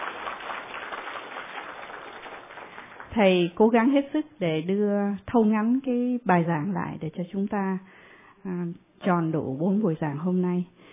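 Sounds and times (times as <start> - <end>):
audience applause at a Buddhist lecture: 0.0 - 3.2
speech: 3.1 - 10.9.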